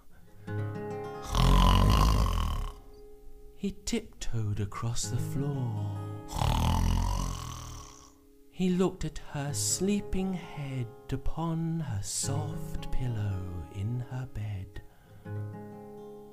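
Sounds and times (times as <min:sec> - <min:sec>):
narrator's voice imitating a princess's loud rumbling snore: 0:01.2 - 0:02.9, 0:06.3 - 0:08.2
speech: 0:03.6 - 0:06.5, 0:08.6 - 0:15.5.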